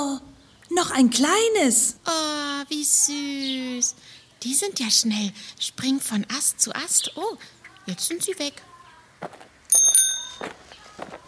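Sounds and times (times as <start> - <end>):
speech: 0.7 - 9.4
bicycle bell ringing: 9.7 - 10.5.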